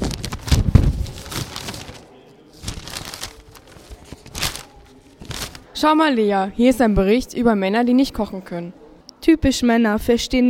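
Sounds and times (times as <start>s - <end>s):
newspaper pages rustling and crinkling as they are turned: 0.0s - 5.8s
speech: 5.8s - 10.4s.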